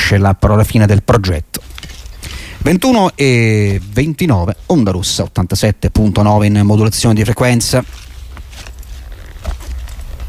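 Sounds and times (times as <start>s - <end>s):
speech: 0.1s - 1.9s, 2.6s - 8.7s
footstep-like trampling in a music track: 1.6s - 4.9s, 7.7s - 10.2s.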